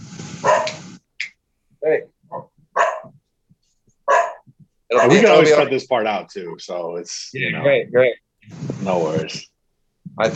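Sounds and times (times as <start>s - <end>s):
dog barking: 0.4s - 0.8s, 2.3s - 3.2s, 4.0s - 5.4s
speech: 1.9s - 2.1s, 4.9s - 9.5s, 10.2s - 10.3s.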